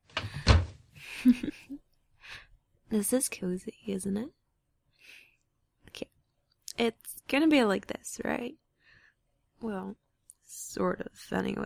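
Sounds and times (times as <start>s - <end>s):
door thudding shut: 0.2s - 0.8s
speech: 1.2s - 1.6s, 2.9s - 4.4s, 6.8s - 8.6s, 9.6s - 11.6s.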